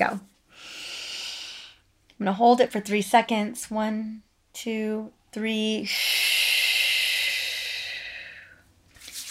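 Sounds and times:
speech: 0:00.0 - 0:00.8, 0:02.2 - 0:06.3
deep belly breaths: 0:00.5 - 0:01.9, 0:05.9 - 0:08.7.

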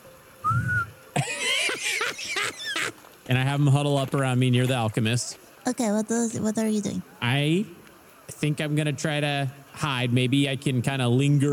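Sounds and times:
person whistling to call a group: 0:00.4 - 0:01.0
laughter: 0:01.2 - 0:03.0
speech: 0:03.3 - 0:11.5.

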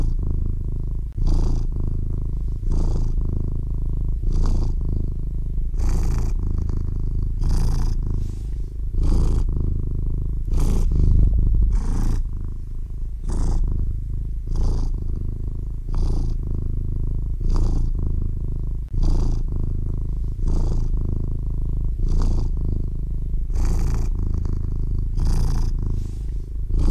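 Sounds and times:
baby kitten purring: 0:00.0 - 0:26.8.

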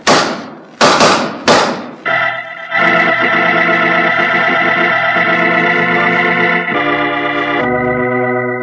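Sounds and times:
loud revolver gunshots: 0:00.0 - 0:02.4
sustained music chord: 0:02.1 - 0:08.6.

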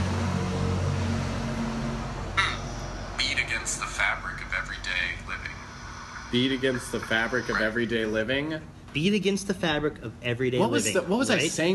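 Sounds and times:
heavy truck rumbling past outside: 0:00.0 - 0:07.5
voices: 0:02.4 - 0:11.7
speech: 0:06.3 - 0:11.7.

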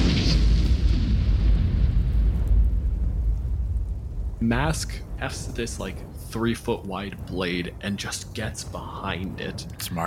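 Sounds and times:
explosion as a creature with burning eyes ruptures: 0:00.0 - 0:06.6
speech: 0:04.4 - 0:10.0.

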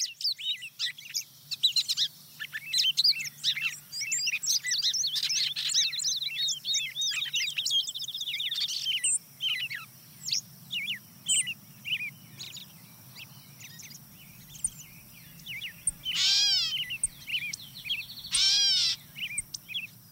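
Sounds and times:
dawn chorus of songbirds including wood pewee, song sparrow and gray catbird: 0:00.0 - 0:20.1
steady low hum: 0:10.0 - 0:20.1.

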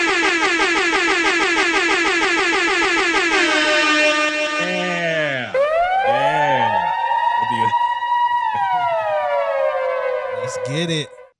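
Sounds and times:
wailing swooping horn tones: 0:00.2 - 0:11.3
air horn sound effect blasts: 0:02.9 - 0:07.0
speech: 0:10.8 - 0:11.2.

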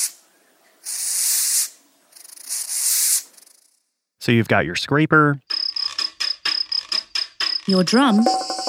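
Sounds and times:
Madagascar hissing cockroach hissing: 0:00.8 - 0:03.7
speech: 0:04.2 - 0:05.5, 0:07.7 - 0:08.4.

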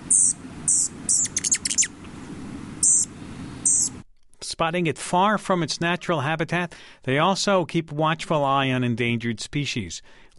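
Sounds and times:
low rumble: 0:00.0 - 0:04.0
rufous hummingbird chip calls: 0:00.0 - 0:04.0
speech: 0:04.6 - 0:10.3.

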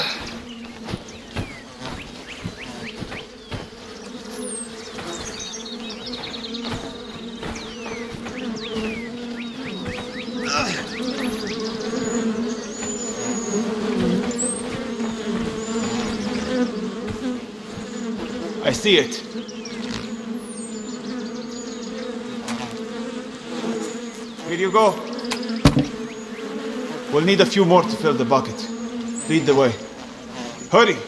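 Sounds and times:
bees buzzing around a hive: 0:00.0 - 0:31.0
speech: 0:18.8 - 0:19.3, 0:24.6 - 0:25.0, 0:27.2 - 0:28.7, 0:29.3 - 0:29.8, 0:30.7 - 0:31.0.

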